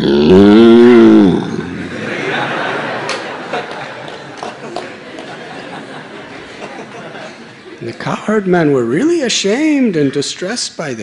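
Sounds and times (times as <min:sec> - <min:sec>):
cow mooing: 0:00.0 - 0:01.6
laughter: 0:01.6 - 0:07.8
speech: 0:08.3 - 0:11.0.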